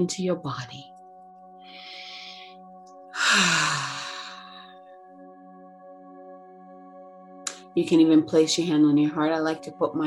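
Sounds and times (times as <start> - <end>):
speech: 0.0 - 0.9, 3.3 - 3.9, 7.8 - 10.0
soft steady musical drone: 0.0 - 10.0
deep breath out during a guided meditation: 1.6 - 4.9.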